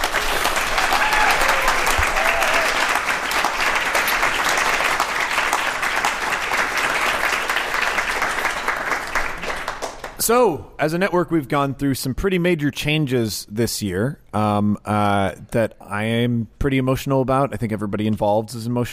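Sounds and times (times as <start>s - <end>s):
crowd applauding: 0.0s - 10.2s
speech: 10.3s - 18.9s.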